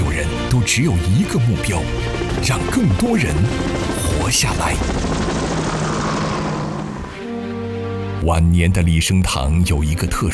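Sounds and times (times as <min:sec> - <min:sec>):
propeller rescue plane flying overhead: 0:00.3 - 0:08.2
speech: 0:00.5 - 0:05.4, 0:08.2 - 0:10.3.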